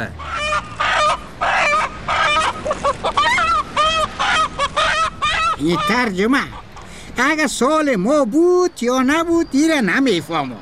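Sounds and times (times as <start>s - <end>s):
speech: 0.0s - 0.3s, 5.6s - 6.6s, 7.2s - 10.5s
chicken clucking: 0.2s - 6.9s.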